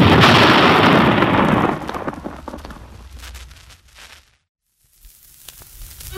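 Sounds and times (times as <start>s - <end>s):
ancient rusty cannon blast fired in a village park: 0.0s - 3.0s
scattered crackles: 0.0s - 6.1s.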